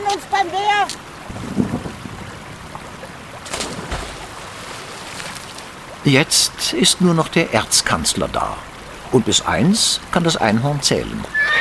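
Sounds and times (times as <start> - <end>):
swollen river rushing beneath a bridge: 0.0 - 11.5
speech: 0.1 - 1.4, 6.0 - 11.5.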